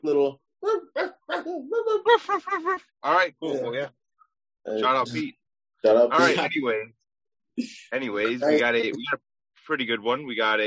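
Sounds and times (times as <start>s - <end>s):
speech: 0.0s - 0.8s, 2.1s - 4.0s, 4.6s - 7.0s, 7.6s - 10.6s
people imitating dog barks and yips: 0.6s - 2.8s, 6.0s - 6.5s, 8.2s - 9.1s.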